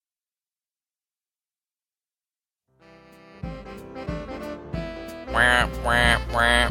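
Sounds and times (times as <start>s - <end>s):
duck quacking: 5.3s - 6.6s.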